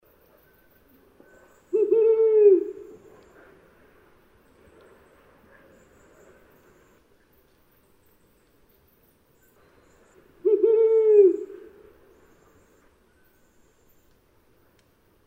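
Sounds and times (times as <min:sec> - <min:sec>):
brown wood owl hooting: 0:01.2 - 0:03.4, 0:10.0 - 0:12.8.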